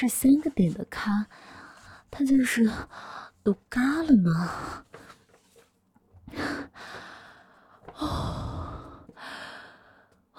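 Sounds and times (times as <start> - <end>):
speech: 0.0 - 5.2, 6.3 - 7.0, 8.0 - 8.6
deep breathing from one person: 6.3 - 10.1.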